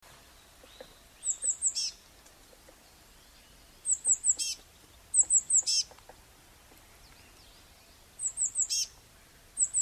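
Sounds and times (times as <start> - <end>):
faint background noise: 0.0 - 9.8
Eurasian blue tit Cyanistes caeruleus calling: 0.7 - 2.0, 3.6 - 6.0, 8.2 - 9.0, 9.6 - 9.8.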